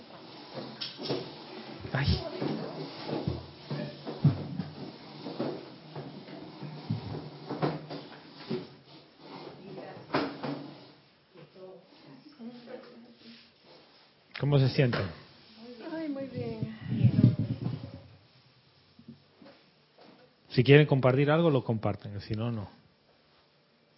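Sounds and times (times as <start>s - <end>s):
wooden chairs scraping and thumping as they are shuffled back into place: 0.0s - 11.0s, 16.3s - 18.4s
speech: 1.9s - 3.4s, 14.5s - 15.2s, 20.6s - 22.9s.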